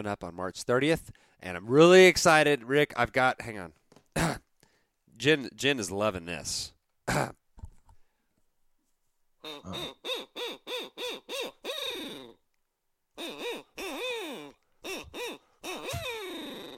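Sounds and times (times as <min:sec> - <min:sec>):
speech: 0:00.0 - 0:04.4, 0:05.2 - 0:07.4, 0:09.4 - 0:12.4, 0:13.2 - 0:14.1
handheld owl call hoots used to locate gobbling turkeys: 0:09.4 - 0:12.4, 0:13.2 - 0:16.7.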